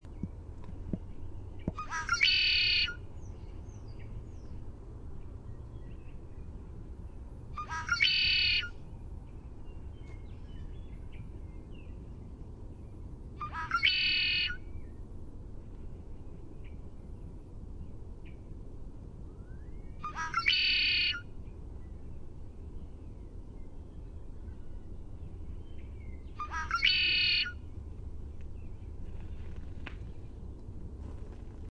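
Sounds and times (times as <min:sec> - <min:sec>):
Red-winged Blackbird song: 0:00.0 - 0:15.0, 0:19.3 - 0:29.3.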